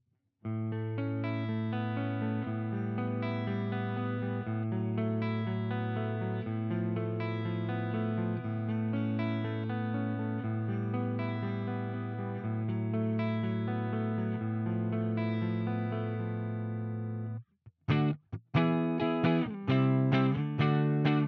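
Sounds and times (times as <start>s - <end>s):
Fusion T guitar clean neck pickup tone: 0.8s - 21.2s.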